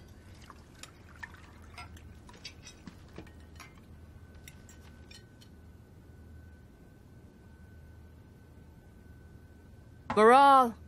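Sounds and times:
liquid pouring into a glass: 0.2 - 3.2
speech: 10.2 - 10.8.

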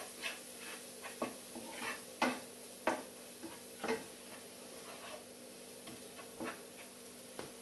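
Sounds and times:
utensil scraping and tapping against frying pan: 0.0 - 2.4, 3.4 - 5.3, 6.1 - 7.0
ground coriander and turmeric sizzling in a frying pan: 0.0 - 7.6.

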